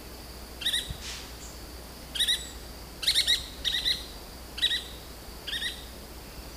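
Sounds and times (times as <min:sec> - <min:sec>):
yellow-fronted woodpecker chattering calls: 0:02.2 - 0:05.9.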